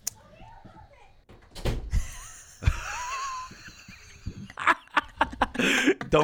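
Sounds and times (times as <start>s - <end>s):
people talking: 0.1s - 1.2s
child's voice: 0.2s - 1.2s
door swinging shut with solid thuds: 1.3s - 2.0s
laughter: 1.9s - 6.2s.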